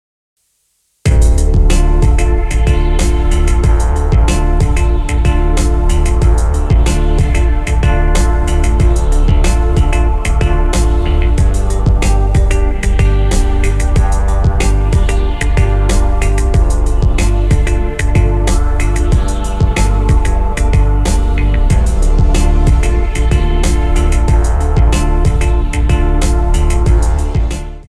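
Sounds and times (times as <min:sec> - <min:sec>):
pop dance music with choir: 0:01.1 - 0:27.8.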